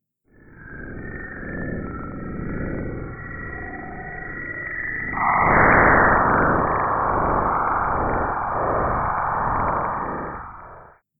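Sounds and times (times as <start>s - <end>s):
sonified space plasma waves from the solar wind hitting Saturn's magnetic field: 5.2s - 10.9s.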